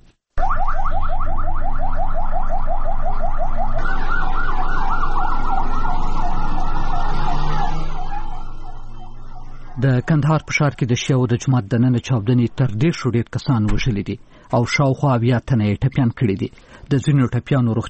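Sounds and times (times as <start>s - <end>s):
ambulance sirens heading to a Shia mosque in Kandahar: 0.4s - 11.2s
speech: 9.8s - 17.8s.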